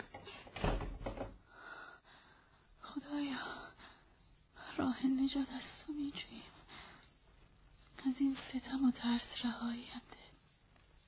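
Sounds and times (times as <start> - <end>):
door closing with a dull thud: 0.0 - 1.4
speech: 4.8 - 6.6, 8.0 - 10.3.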